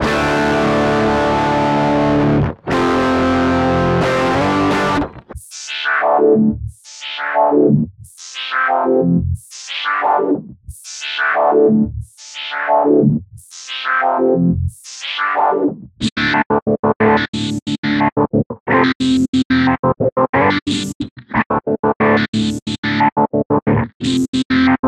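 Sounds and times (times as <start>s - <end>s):
distorted guitar: 0.0s - 13.2s, 13.9s - 24.8s.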